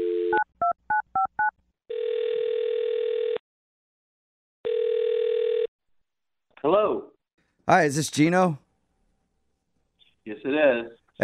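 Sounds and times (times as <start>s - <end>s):
telephone ringing tones: 0.0s - 3.4s, 4.6s - 5.7s
speech: 7.7s - 8.6s, 10.7s - 11.2s.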